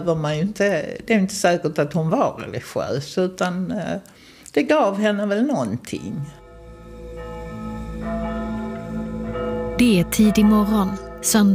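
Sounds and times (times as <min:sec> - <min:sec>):
speech: 0:00.0 - 0:06.4, 0:09.8 - 0:11.5
church bells ringing: 0:06.4 - 0:11.5.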